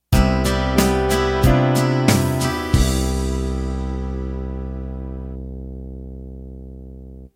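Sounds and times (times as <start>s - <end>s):
country ballad ending: 0.2s - 5.2s.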